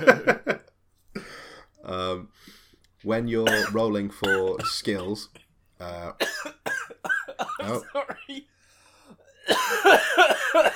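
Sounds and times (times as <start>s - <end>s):
speech: 3.0s - 6.3s, 7.7s - 8.5s
person coughing: 3.4s - 5.5s, 6.2s - 8.4s, 9.4s - 10.7s.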